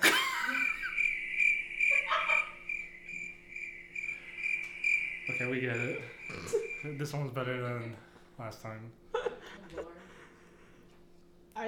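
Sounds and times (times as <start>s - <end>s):
laughter: 0.0s - 1.2s, 1.8s - 2.6s, 6.2s - 7.0s, 9.1s - 10.9s
crickets chirping in a dense high-pitched chorus: 0.0s - 8.1s
speech: 5.4s - 9.1s.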